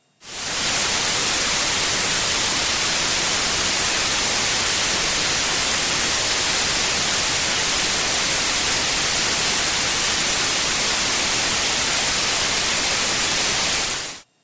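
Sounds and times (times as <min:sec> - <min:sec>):
white noise hiss: 0:00.0 - 0:14.4.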